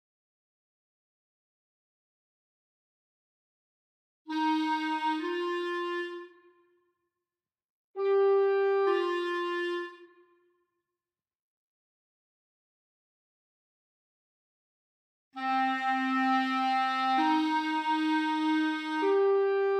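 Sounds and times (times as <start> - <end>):
orchestral clarinet: 4.3 - 6.7, 8.0 - 10.4, 15.4 - 19.7.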